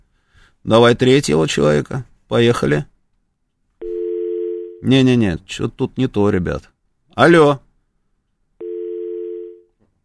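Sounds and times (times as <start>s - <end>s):
speech: 0.6s - 2.9s, 4.8s - 7.6s
telephone busy signal on a call-in line: 3.8s - 4.8s, 8.6s - 9.6s.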